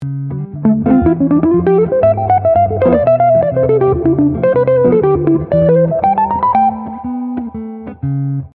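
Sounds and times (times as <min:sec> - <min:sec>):
jazz fusion lick: 0:00.5 - 0:07.6.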